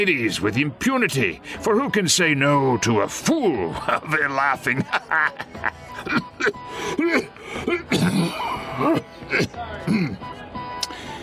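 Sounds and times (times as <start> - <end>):
speech: 0.0 - 10.4
laughter: 3.7 - 9.0
harsh coughing fit from a person with a slight chest affliction: 6.0 - 10.2.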